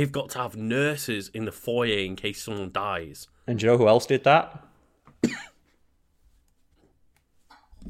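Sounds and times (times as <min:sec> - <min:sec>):
speech: 0:00.0 - 0:04.6
person coughing: 0:05.2 - 0:05.6.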